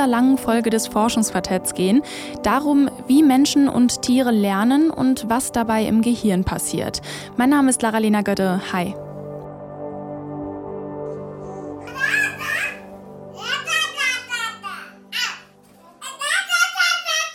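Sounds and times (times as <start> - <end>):
speech: 0.0 - 9.0
baby giggly laughter: 11.8 - 15.4
two babies babbling to each other: 11.8 - 17.3.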